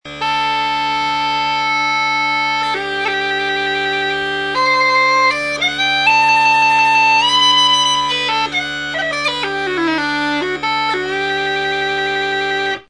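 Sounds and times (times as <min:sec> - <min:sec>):
practice drones adapted from antique narrow bore or flat pitch designs: 0:00.1 - 0:12.8.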